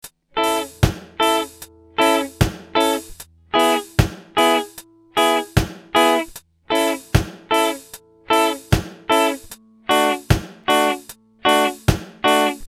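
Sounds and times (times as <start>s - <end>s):
reggae rhythm guitar off beat skank rhythms with muting and 16th notes: 0.3s - 12.6s.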